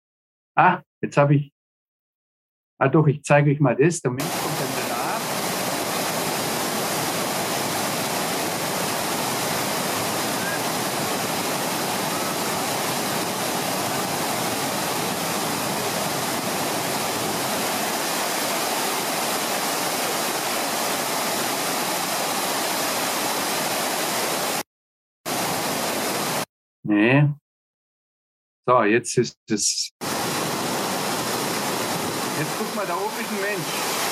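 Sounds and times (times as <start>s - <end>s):
speech: 0.6s - 1.6s, 2.8s - 4.7s, 28.7s - 30.2s, 32.4s - 33.9s
rushing masses of water: 4.2s - 24.6s, 25.3s - 26.4s, 30.0s - 34.1s.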